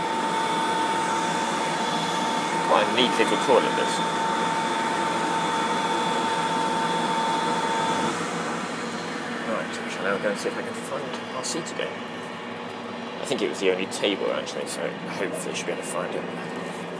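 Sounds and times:
electric hand dryer blowing in a small train toilet: 0:00.0 - 0:12.0
speech: 0:02.7 - 0:04.3, 0:10.0 - 0:12.3, 0:13.3 - 0:16.9.

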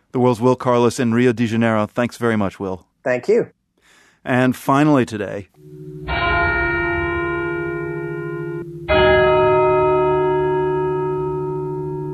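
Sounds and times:
speech: 0:00.1 - 0:03.6, 0:04.2 - 0:06.0
funeral bells of an evangelical Lutheran church in Helsinki ringing: 0:05.6 - 0:12.1.

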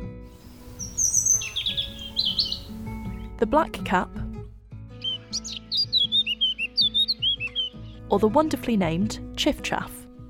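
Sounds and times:
robin singing: 0:00.3 - 0:02.8, 0:05.0 - 0:07.8
speech: 0:03.4 - 0:04.2, 0:08.1 - 0:10.0.

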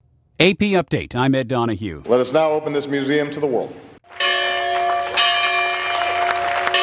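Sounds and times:
speech: 0:00.4 - 0:03.9
scattered clapping: 0:04.0 - 0:06.8
large bell ringing with sustained metallic tones: 0:04.2 - 0:06.8.

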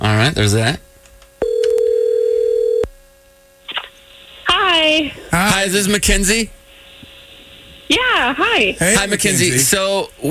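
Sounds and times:
speech: 0:00.2 - 0:00.9, 0:04.9 - 0:06.6, 0:07.9 - 0:10.3
telephone dial tone while placing a call: 0:01.4 - 0:02.9.

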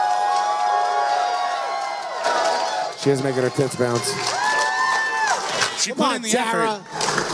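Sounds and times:
crowd cheering for a talent show contestant: 0:00.0 - 0:07.3
speech: 0:03.0 - 0:04.4, 0:05.8 - 0:07.2.

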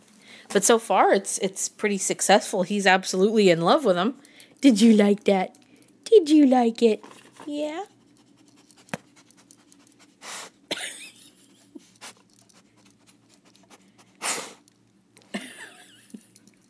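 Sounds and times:
speech: 0:00.5 - 0:08.0
dog sniffing around the floor by a desk for treats: 0:07.9 - 0:10.6, 0:11.7 - 0:14.7.

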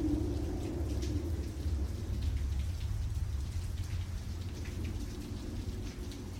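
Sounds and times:
heavy rain pouring down: 0:00.0 - 0:06.3.

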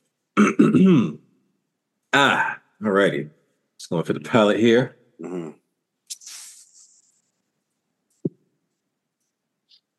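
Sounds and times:
person clearing throat: 0:00.4 - 0:01.2, 0:05.2 - 0:05.6
speech: 0:00.6 - 0:01.2, 0:02.1 - 0:05.5.

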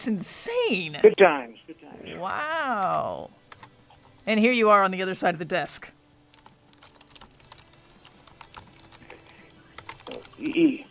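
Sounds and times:
speech: 0:00.0 - 0:03.4, 0:04.2 - 0:06.0, 0:10.4 - 0:10.9
child typing on a computer keyboard: 0:02.8 - 0:03.8, 0:06.3 - 0:10.7.

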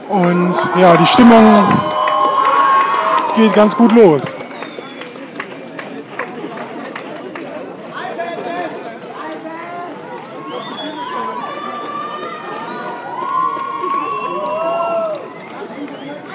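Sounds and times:
store staff crowd chattering and calling out: 0:00.0 - 0:16.3
speech: 0:00.1 - 0:01.9, 0:03.4 - 0:04.4
store staff whoops and cheers: 0:00.3 - 0:04.9, 0:10.3 - 0:15.7.

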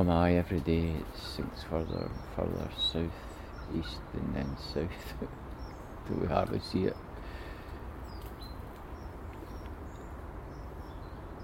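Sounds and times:
speech: 0:00.0 - 0:05.4, 0:06.1 - 0:07.0
small birds including a coal tit chirping at a bird feeder on a tree: 0:00.0 - 0:11.4
steady hiss of outdoor noise on a clear autumn morning: 0:00.0 - 0:11.4.

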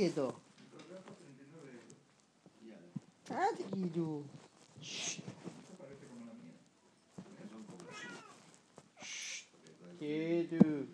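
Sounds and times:
speech: 0:00.0 - 0:00.5, 0:03.3 - 0:05.3, 0:10.0 - 0:10.9
cat meowing: 0:07.8 - 0:09.3
short hissing bursts: 0:09.0 - 0:09.6.

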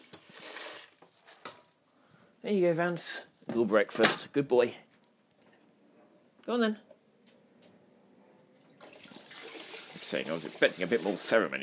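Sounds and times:
water pouring into a dog's bowl: 0:00.0 - 0:01.0, 0:08.7 - 0:11.5
speech: 0:02.4 - 0:04.8, 0:06.5 - 0:06.9, 0:10.1 - 0:11.6.

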